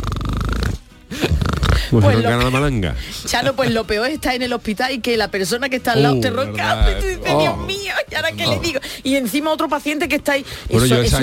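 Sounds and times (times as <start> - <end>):
person imitating snoring: 0.0 - 2.0
speech: 1.9 - 11.2.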